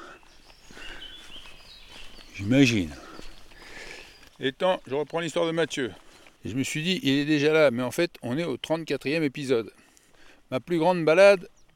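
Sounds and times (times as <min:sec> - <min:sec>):
faint rustling: 0:00.0 - 0:06.8
footsteps: 0:00.0 - 0:07.4
song thrush singing softly: 0:00.0 - 0:07.5, 0:09.7 - 0:11.7
speech: 0:02.4 - 0:03.0, 0:04.4 - 0:09.8, 0:10.5 - 0:11.6.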